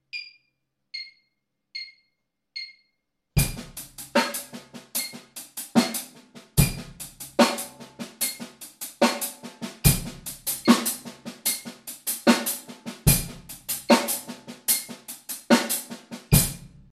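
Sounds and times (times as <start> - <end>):
bass drum paradiddle: 3.4 - 16.9.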